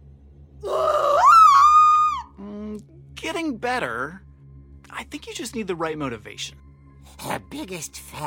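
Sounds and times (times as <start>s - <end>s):
weak strained scream from a teenage girl: 0.6s - 2.3s
speech: 3.6s - 4.3s, 5.1s - 8.2s.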